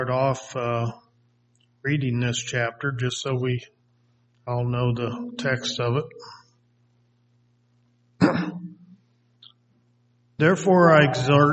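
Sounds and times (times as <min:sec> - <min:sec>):
speech: 0:00.0 - 0:01.0, 0:01.8 - 0:03.8, 0:04.5 - 0:06.4, 0:10.4 - 0:11.5
person clearing throat around a cough drop: 0:08.2 - 0:08.8.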